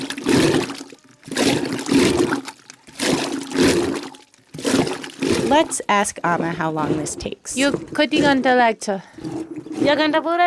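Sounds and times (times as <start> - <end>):
milk churned by a rope-pulled wooden rod with paddles: 0.0 - 10.4
speech: 5.5 - 10.4.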